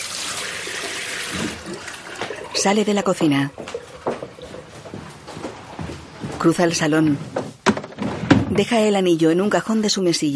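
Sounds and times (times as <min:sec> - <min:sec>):
tap water running into a kitchen sink: 0:00.0 - 0:02.7
speech: 0:02.6 - 0:03.6, 0:06.4 - 0:07.4, 0:08.6 - 0:10.3.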